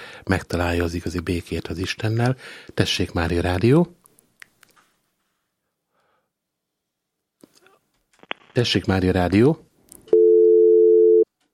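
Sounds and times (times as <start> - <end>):
speech: 0.3 - 4.0, 8.6 - 9.7
electronic phone-line tone after a dropped call: 10.1 - 11.3.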